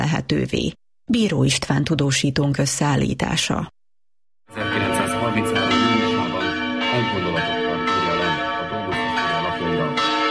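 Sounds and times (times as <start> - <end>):
speech: 0.1 - 3.8, 5.3 - 5.8
church bells ringing in a peal: 4.5 - 10.2.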